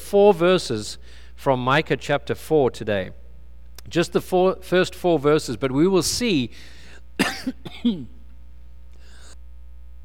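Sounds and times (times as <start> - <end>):
speech: 0.1 - 3.2, 3.9 - 8.2
adult coughing: 7.2 - 8.3.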